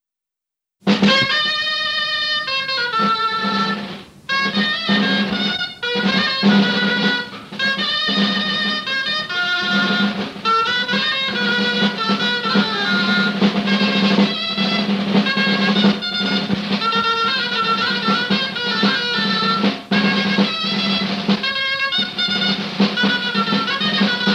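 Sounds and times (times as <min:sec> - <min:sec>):
traditional folk dance music: 0:00.8 - 0:24.3.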